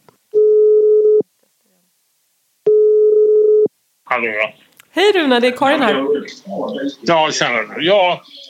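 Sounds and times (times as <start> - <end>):
buzzing telephone ringing tone heard down the line while placing a call: 0.4 - 1.2, 2.7 - 3.7
speech: 4.1 - 8.4.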